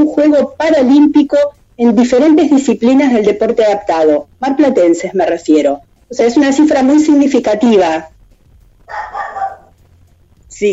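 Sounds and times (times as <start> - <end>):
speech: 0.0 - 8.1, 8.9 - 9.4, 10.6 - 10.7
quiet low hum: 0.0 - 10.7
small female dog barking high-pitched: 8.9 - 9.8.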